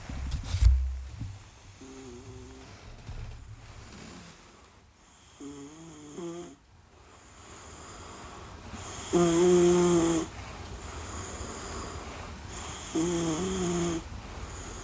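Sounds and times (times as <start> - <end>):
airy hiss: 0.0 - 14.8
person snoring: 1.8 - 2.6, 8.9 - 10.3, 12.6 - 14.0
speech: 9.1 - 10.0.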